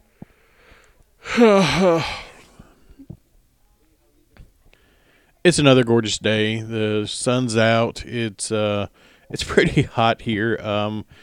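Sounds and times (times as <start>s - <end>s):
person yawning: 1.2s - 2.6s
speech: 1.4s - 2.2s, 5.4s - 11.2s.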